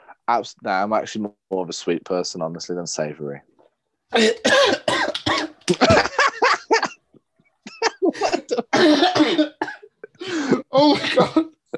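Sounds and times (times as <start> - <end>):
speech: 0.3 - 3.5, 4.1 - 4.9, 10.8 - 11.4
person coughing harshly after inhaling a drink: 4.1 - 6.1, 7.7 - 11.7
laughter: 5.7 - 7.0, 7.7 - 8.8.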